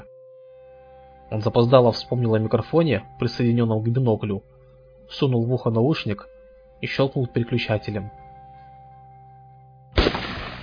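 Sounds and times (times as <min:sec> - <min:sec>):
soft tonal drone: 0:00.0 - 0:10.0
speech: 0:01.3 - 0:04.5, 0:05.1 - 0:08.2
gunshot with deafening crack and echo: 0:10.0 - 0:10.6.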